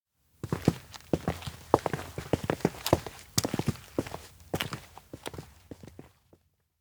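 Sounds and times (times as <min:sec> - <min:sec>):
footsteps entering an indoor observatory: 0:00.4 - 0:06.4.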